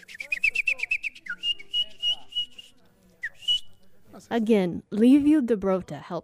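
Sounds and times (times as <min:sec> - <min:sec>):
speech: 0:00.0 - 0:00.4, 0:04.3 - 0:06.2
folk musician whistling with the lips to imitate bird calls: 0:00.0 - 0:03.8.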